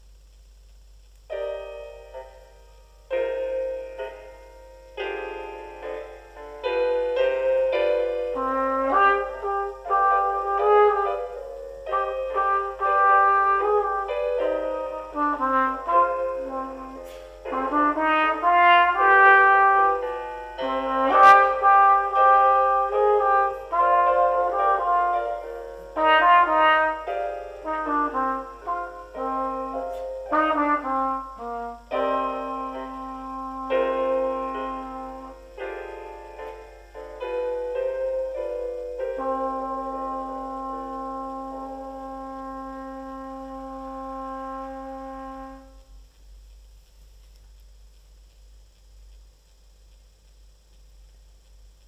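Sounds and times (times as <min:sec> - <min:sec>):
E trumpet playing a grade one waltz: 0:06.0 - 0:36.6, 0:37.2 - 0:45.8.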